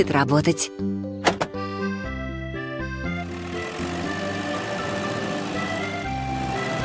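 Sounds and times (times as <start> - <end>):
speech: 0.0 - 1.2
sharp clunks: 1.2 - 1.6
wheel loader heavy diesel engine rumbling: 2.6 - 6.8.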